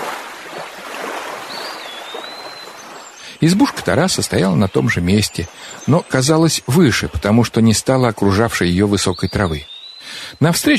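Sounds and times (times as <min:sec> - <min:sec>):
heavy autumn waves washing against the shore: 0:00.0 - 0:07.4
speech: 0:03.4 - 0:10.7.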